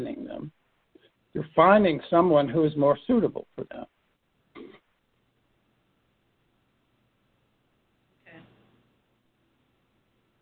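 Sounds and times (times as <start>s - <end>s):
quiet low hum: 0.0s - 10.4s
speech: 1.6s - 3.5s
harsh throat-clearing coughs from a coughing attack: 4.6s - 4.8s.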